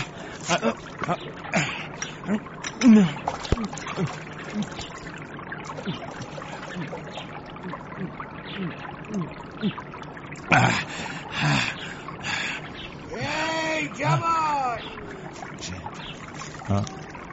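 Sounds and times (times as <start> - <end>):
spring water flowing and trickling by a pond: 0.0 - 17.3
person speaking: 13.1 - 15.0.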